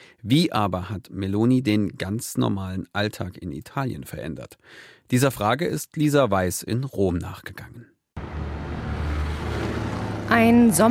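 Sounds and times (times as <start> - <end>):
speech: 0.2 - 7.9, 10.3 - 10.8
cars driving through a tunnel-like underpass: 8.2 - 10.8.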